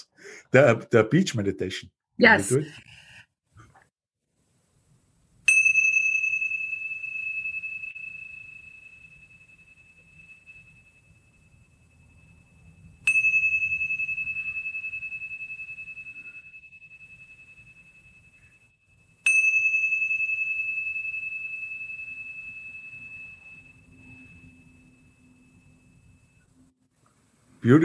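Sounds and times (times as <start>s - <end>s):
speech: 0.5s - 3.0s, 27.6s - 27.8s
brass Tibetan tingsha bells chiming: 5.5s - 26.5s.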